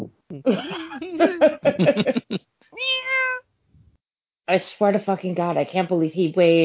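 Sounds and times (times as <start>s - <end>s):
laughter: 0.4s - 2.4s
speech: 0.4s - 2.4s, 4.5s - 6.6s
large heavy cat over twenty pounds meowing: 2.8s - 3.4s.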